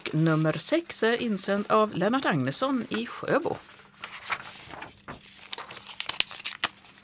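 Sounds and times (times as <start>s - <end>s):
speech: 0.1s - 3.8s
paper lottery slip unfolded and crinkling: 2.8s - 7.0s.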